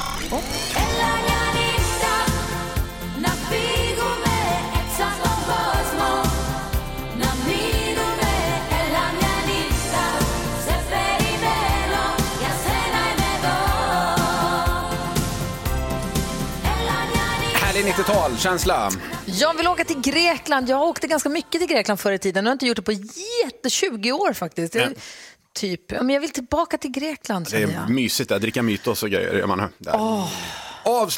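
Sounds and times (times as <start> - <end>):
speech: 0.3 - 0.7, 17.8 - 31.1
1990s Greek pop schlager song with a driving beat and layered instrumentation: 0.4 - 21.5, 27.5 - 27.9.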